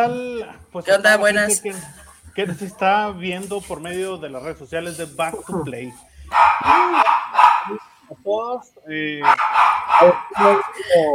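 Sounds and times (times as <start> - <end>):
speech: 0.0 - 11.1
laughter: 1.6 - 3.8, 10.3 - 11.1
excited small dog yipping: 6.3 - 7.8, 9.2 - 10.7.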